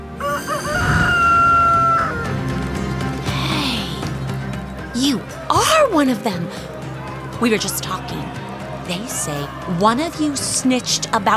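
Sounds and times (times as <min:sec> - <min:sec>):
ambience: 0:00.0 - 0:05.5
rooster crowing: 0:00.1 - 0:02.6
speech: 0:05.9 - 0:06.7, 0:07.4 - 0:11.3.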